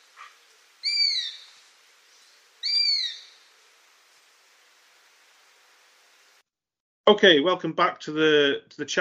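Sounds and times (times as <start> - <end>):
faint hiss: 0.0 - 6.4
Eurasian Sparrowhawk squeaky high-pitched falling calls: 0.8 - 1.6, 2.6 - 3.4
speech: 7.1 - 9.0.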